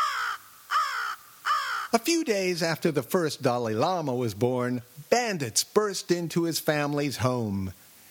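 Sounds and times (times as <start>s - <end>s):
crow cawing: 0.0s - 2.0s
speech: 1.9s - 7.8s.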